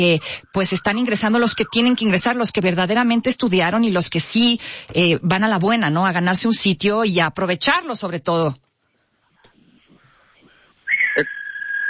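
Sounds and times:
speech: 0.0 - 8.6, 11.2 - 11.4
sharp high whistle: 0.5 - 2.2.

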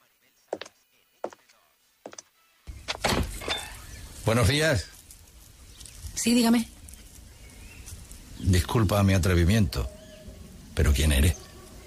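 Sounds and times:
door creaking and rustling as it swings open: 2.8 - 3.9
speech: 4.2 - 5.0, 6.2 - 6.8, 8.5 - 10.0, 10.8 - 11.4.

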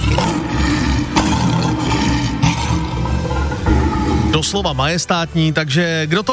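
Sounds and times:
Asiatic lion roaring: 0.0 - 5.0
speech: 4.4 - 6.3.

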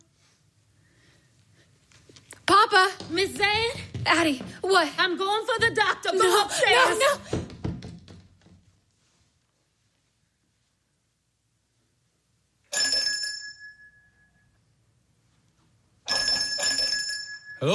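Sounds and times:
speech: 2.7 - 7.4
soft knocks: 7.3 - 8.6
door bell ringing: 12.7 - 14.5, 16.1 - 17.7.

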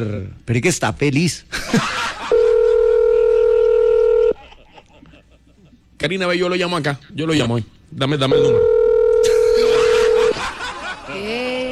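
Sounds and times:
speech: 0.0 - 2.1, 6.0 - 8.8
laughter: 1.5 - 3.3, 4.4 - 5.9, 9.2 - 11.7
telephone dial tone while a call is being placed: 2.4 - 4.4, 8.4 - 9.2.

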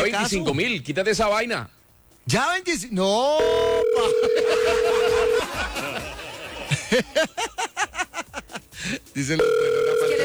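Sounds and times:
speech: 0.0 - 8.1, 8.8 - 10.2
telephone tone of an unanswered call: 3.4 - 5.6, 9.4 - 10.2
rhythmic pulsing laughter: 3.9 - 9.3.

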